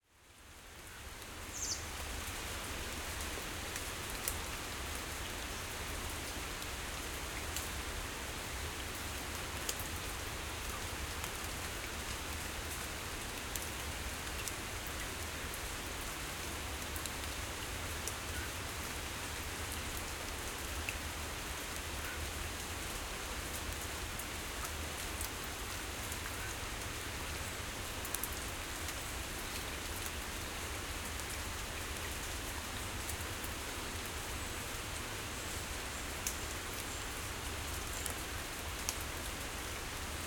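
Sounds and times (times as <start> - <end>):
quiet forest rain in Chile: 0.0 - 40.2.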